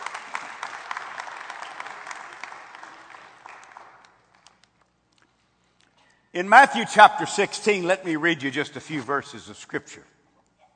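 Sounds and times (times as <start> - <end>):
crowd applauding: 0.0 - 4.5
speech: 6.4 - 10.2.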